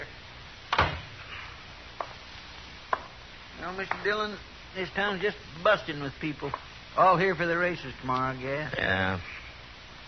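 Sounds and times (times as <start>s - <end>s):
door shutting with a heavy thud: 0.7s - 1.2s
speech: 3.7s - 9.4s.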